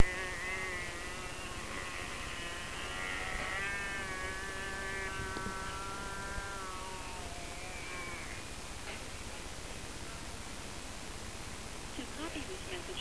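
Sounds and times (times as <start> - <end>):
llama calls: 0.0 - 8.6
steady hiss: 0.0 - 12.9.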